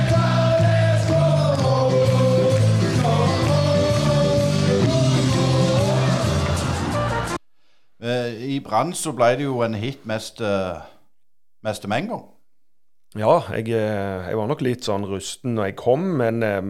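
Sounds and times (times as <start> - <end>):
football supporters singing a song about a football player: 0.0 - 7.4
speech: 8.6 - 10.9, 11.6 - 12.3, 13.1 - 16.6.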